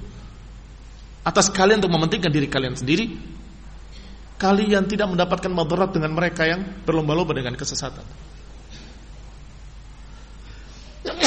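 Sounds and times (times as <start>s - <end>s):
quiet hum: 0.0s - 11.2s
speech: 1.2s - 3.4s, 4.4s - 8.3s
sneeze: 11.0s - 11.2s.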